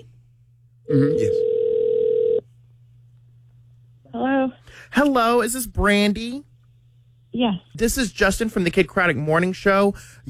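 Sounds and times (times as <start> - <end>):
speech: 0.9 - 1.5, 4.9 - 6.5, 7.4 - 10.2
buzzing ring tone of an outgoing phone call: 0.9 - 2.4.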